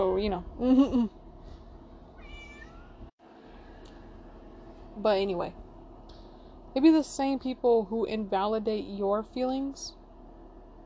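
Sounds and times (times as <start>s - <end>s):
speech: 0.2s - 1.2s, 5.0s - 5.6s, 6.8s - 10.0s
cat in heat meowing: 2.2s - 3.0s.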